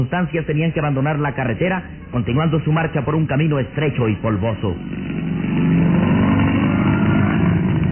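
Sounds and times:
speech: 0:00.0 - 0:05.2
modern sports car engine droning while driving a dusty dirt road: 0:01.9 - 0:07.9.

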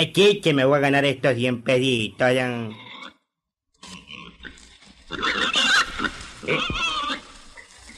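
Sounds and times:
speech: 0:00.0 - 0:02.8, 0:05.1 - 0:05.4
sow grunting and oinking with squealing snorts: 0:02.6 - 0:07.9.

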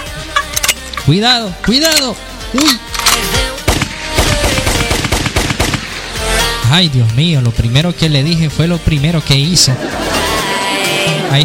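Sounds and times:
speech: 0:01.0 - 0:03.4, 0:06.7 - 0:10.2, 0:11.3 - 0:11.4
gunshots in a dense barrage: 0:01.7 - 0:06.6
laughter: 0:09.4 - 0:11.4.

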